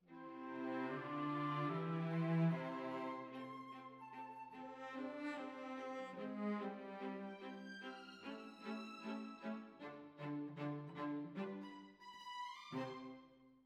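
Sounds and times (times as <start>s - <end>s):
cellos playing: 0.3s - 3.5s, 4.8s - 12.0s.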